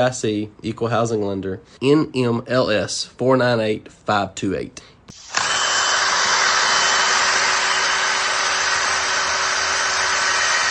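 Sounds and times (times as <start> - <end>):
speech: 0.0 - 5.3
hay drill power coring drill running on a farm: 5.1 - 10.6.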